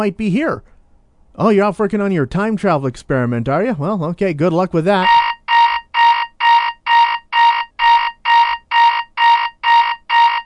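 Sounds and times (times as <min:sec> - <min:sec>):
speech: 0:00.0 - 0:00.7, 0:01.4 - 0:05.2
alarm clock beeping in a lab: 0:05.0 - 0:10.4.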